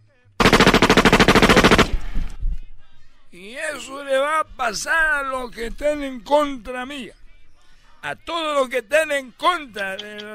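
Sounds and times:
firing squad gunfire in an execution: 0.4s - 2.2s
speech: 3.3s - 7.2s, 8.0s - 10.3s.

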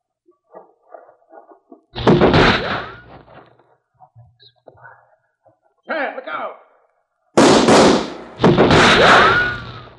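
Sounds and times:
gunshots from a gun being emptied: 2.0s - 3.2s, 7.4s - 9.9s.

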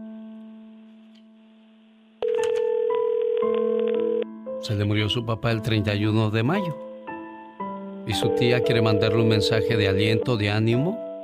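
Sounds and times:
telephone dialing and ringing tones as a call is placed: 2.2s - 4.2s
speech: 4.6s - 6.9s, 8.1s - 11.0s.

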